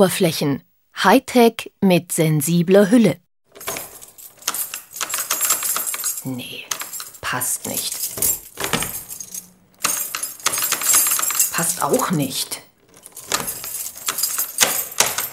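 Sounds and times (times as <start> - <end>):
speech: 0.0 - 3.7, 6.2 - 6.7, 7.3 - 8.4, 11.6 - 12.6
keys jingling on a key ring: 3.5 - 15.3.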